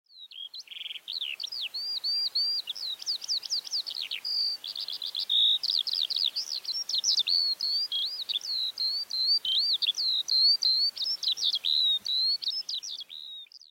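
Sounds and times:
Eurasian skylark singing warbled and trilled phrases: 0:00.1 - 0:13.6
faint background hiss: 0:00.2 - 0:13.6.

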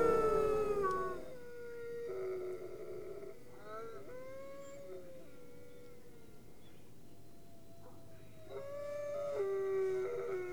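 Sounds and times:
coyote or wolf howl: 0:00.0 - 0:06.1, 0:08.4 - 0:10.5
faint background noise: 0:00.0 - 0:10.5.

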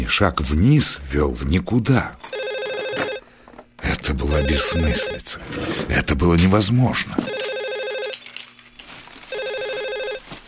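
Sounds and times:
speech: 0:00.0 - 0:03.0, 0:04.0 - 0:07.5
telephone ringing with trilling bell tones: 0:02.3 - 0:03.3, 0:04.2 - 0:05.4, 0:07.2 - 0:08.4, 0:09.3 - 0:10.2.

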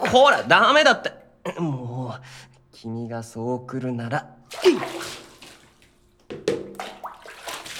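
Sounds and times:
speech: 0:00.1 - 0:05.2
hot water splashing in a bath during a water fight: 0:04.4 - 0:07.7.

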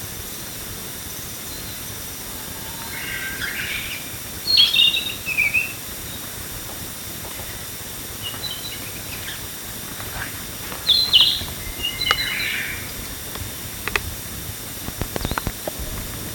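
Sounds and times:
steady hiss: 0:00.0 - 0:16.3
faint scattered chirps: 0:01.3 - 0:13.9
Narcissus flycatcher Ficedula narcissina singing bright whistled and warbled notes: 0:01.5 - 0:06.2, 0:08.2 - 0:09.5, 0:10.8 - 0:13.2.

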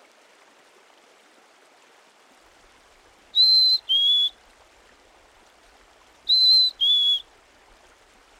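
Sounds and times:
black-capped chickadee singing its whistled two-note fee-bee song: 0:03.4 - 0:04.3, 0:06.3 - 0:07.2.

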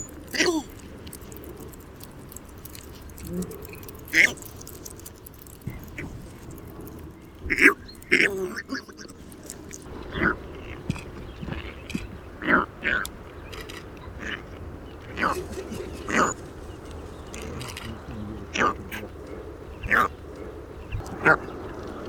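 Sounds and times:
rustling: 0:00.0 - 0:10.0, 0:15.2 - 0:19.0
faint clicks: 0:00.0 - 0:10.2, 0:15.1 - 0:22.0
Northern bald ibis Geronticus eremita uttering rough croaking calls: 0:00.0 - 0:22.0.

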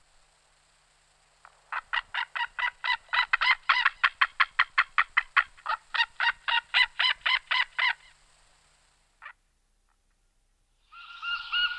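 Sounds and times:
White-tailed eagle Haliaeetus albicilla calling: 0:01.7 - 0:08.2, 0:10.8 - 0:11.7.

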